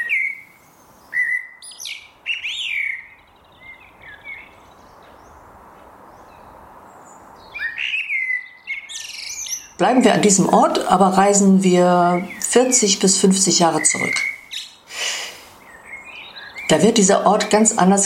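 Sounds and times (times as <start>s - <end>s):
birds singing at a former hard-coal mine in Wetter-Vosshöfen: 0.0s - 18.0s
soft hiss: 0.0s - 18.0s
speech: 9.8s - 14.3s, 16.7s - 18.0s.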